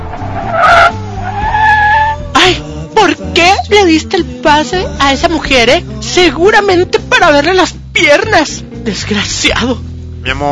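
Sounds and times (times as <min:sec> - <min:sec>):
car braking to a stop with tires skidding: 0:00.0 - 0:02.3
car engine drone: 0:00.0 - 0:02.4
speech: 0:03.7 - 0:10.5.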